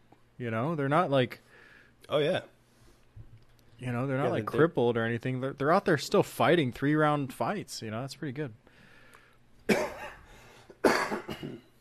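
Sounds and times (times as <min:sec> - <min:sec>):
speech: 0:00.4 - 0:02.6, 0:03.8 - 0:08.6
harsh coughs: 0:09.7 - 0:11.7.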